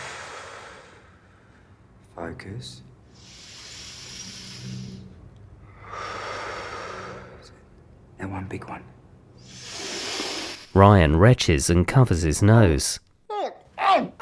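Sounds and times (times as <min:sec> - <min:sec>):
slow deep breathing in through the nose and out through the mouth: 0:00.0 - 0:02.0, 0:03.0 - 0:07.7, 0:09.4 - 0:10.8
speech: 0:02.2 - 0:03.3, 0:08.2 - 0:09.6, 0:10.8 - 0:13.0.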